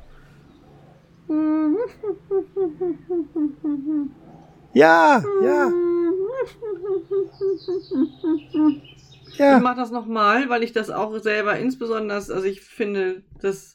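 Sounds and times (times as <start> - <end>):
person imitating whining yelps of a dog: 0.6 - 9.0
person imitating a sleeping dog's muffled barking: 1.3 - 4.2, 4.8 - 8.8
speech: 1.3 - 13.7.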